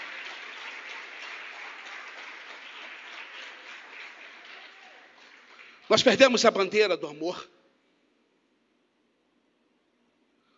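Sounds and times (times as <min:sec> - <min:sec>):
crowd applauding: 0:00.0 - 0:06.4
speech: 0:05.9 - 0:07.6.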